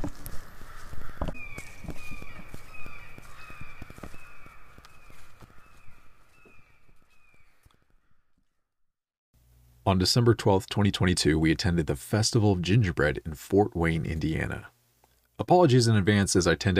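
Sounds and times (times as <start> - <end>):
footstep-like thuds: 0.0 - 7.0
crows cawing outdoors at a gingerbread festival in Fort Wayne, Indiana: 0.0 - 8.5
speech: 9.9 - 14.8, 15.4 - 16.7.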